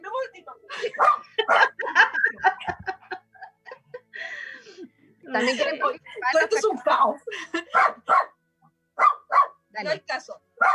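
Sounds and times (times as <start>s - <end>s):
laughter: 0.7s - 4.2s, 5.4s - 7.9s
small dogs barking and yipping: 0.9s - 1.8s, 7.7s - 8.4s, 9.0s - 9.6s
speech: 5.4s - 8.0s, 9.8s - 10.4s.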